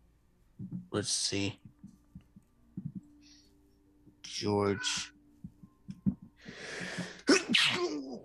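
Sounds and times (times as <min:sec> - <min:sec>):
soft low thumps: 0:00.6 - 0:03.2, 0:05.4 - 0:07.2
speech: 0:01.0 - 0:01.6, 0:04.4 - 0:05.1
loud sneeze after a breathy inhale: 0:07.3 - 0:08.2.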